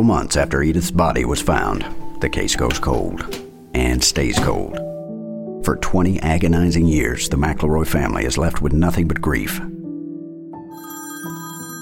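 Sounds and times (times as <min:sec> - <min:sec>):
speech: 0:00.0 - 0:04.9, 0:05.6 - 0:09.8
telephone bell ringing: 0:10.7 - 0:11.8.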